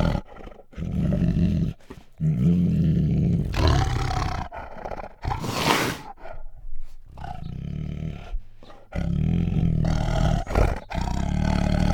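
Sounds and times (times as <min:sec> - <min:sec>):
female Bengal tiger growling and snarling: 0:00.0 - 0:11.9.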